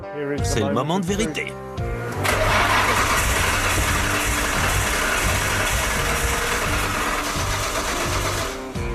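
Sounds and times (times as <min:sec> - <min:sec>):
speech: 0:00.1 - 0:01.9
car engine cranking but failing to start: 0:02.2 - 0:08.8.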